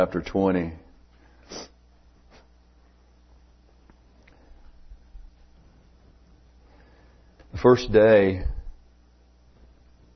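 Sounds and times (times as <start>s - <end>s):
speech: 0.0s - 0.8s, 1.5s - 1.7s, 7.6s - 8.6s
person sniffing: 1.4s - 2.5s.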